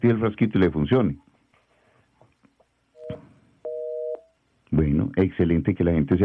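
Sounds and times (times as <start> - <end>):
speech: 0.0 - 1.3, 4.8 - 6.2
loud telephone busy tone after caller hangs up: 3.0 - 4.3.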